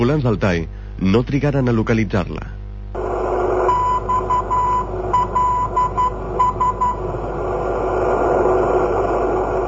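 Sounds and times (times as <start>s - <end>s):
speech: 0.0s - 2.6s
constant hiss and rumble of radio static: 2.9s - 9.6s
irregular Morse code beeps of an unidentified radio emergency signal: 3.7s - 7.0s.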